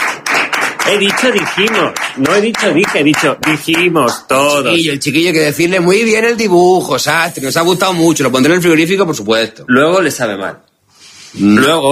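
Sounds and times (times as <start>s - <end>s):
loud sustained applause: 0.0s - 3.8s
speech: 0.9s - 10.7s, 11.3s - 11.9s.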